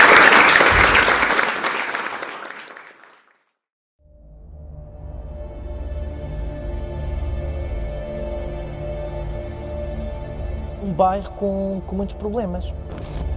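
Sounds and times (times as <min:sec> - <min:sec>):
audience applause: 0:00.0 - 0:03.4
speech: 0:11.0 - 0:13.2.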